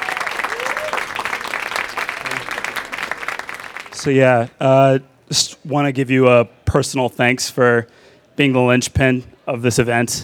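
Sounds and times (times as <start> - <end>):
room full of people applauding: 0.0 - 4.1
speech: 4.0 - 10.2.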